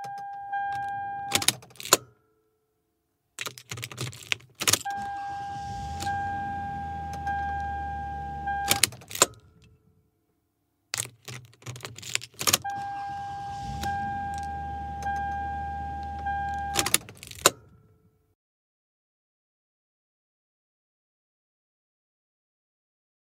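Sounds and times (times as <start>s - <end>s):
car switch lever: 0.1s - 2.1s, 3.4s - 9.7s, 11.0s - 17.7s.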